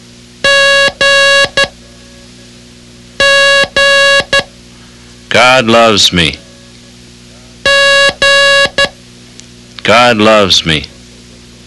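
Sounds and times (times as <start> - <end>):
high-pitched Morse code beeps for the letter G: 0.4 - 1.8, 3.2 - 4.5, 7.7 - 9.0
speech: 5.4 - 6.4, 9.9 - 10.9.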